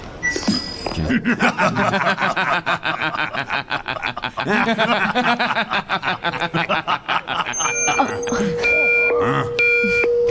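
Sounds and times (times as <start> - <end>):
warning alarm beeping during a combat scene: 0.2 - 0.9, 7.3 - 10.2
laughter: 0.9 - 10.0.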